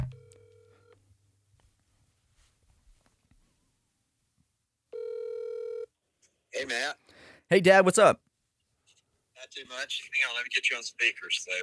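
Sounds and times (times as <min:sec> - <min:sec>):
loud steady ringback tone of an outgoing phone call: 0:00.0 - 0:00.9, 0:04.9 - 0:05.9
speech: 0:06.6 - 0:08.3, 0:09.4 - 0:11.6.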